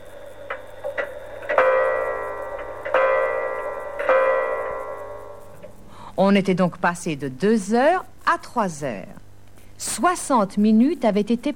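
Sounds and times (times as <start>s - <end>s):
clock striking chimes: 0.0s - 5.8s
speech: 6.2s - 9.2s, 9.8s - 11.5s.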